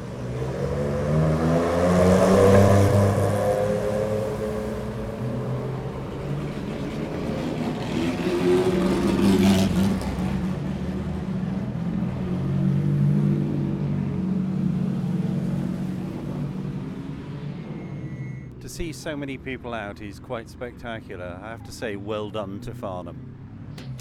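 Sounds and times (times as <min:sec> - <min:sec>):
vintage 1950s cars driving past on a wet road in Farnham on a rainy afternoon: 0:00.0 - 0:18.6
speech: 0:18.8 - 0:23.2.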